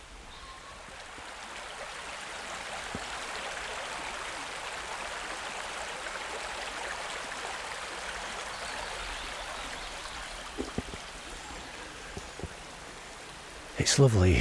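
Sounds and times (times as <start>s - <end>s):
flowing river water: 0.0s - 14.3s
soft knocks or footfalls: 10.5s - 11.1s
speech: 13.8s - 14.3s.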